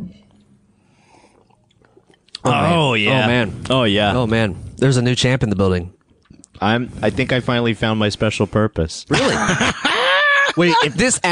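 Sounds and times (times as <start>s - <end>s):
person sipping beer and swallowing: 0.2s - 2.5s, 6.0s - 6.6s
loud drawn-out vocal exclamation: 2.4s - 3.4s
speech: 2.4s - 6.0s, 6.6s - 9.8s, 10.6s - 11.2s
laughter: 9.1s - 11.2s.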